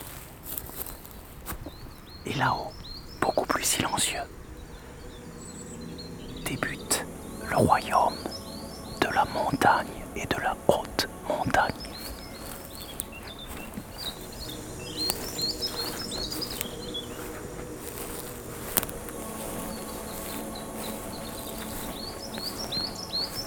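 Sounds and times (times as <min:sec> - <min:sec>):
several birds chirping in the mountains: 0:00.0 - 0:23.4
steady outdoor hiss: 0:00.0 - 0:23.4
soft insect-like buzz: 0:00.1 - 0:23.4
speech: 0:02.2 - 0:04.4, 0:07.5 - 0:08.3, 0:09.2 - 0:11.9.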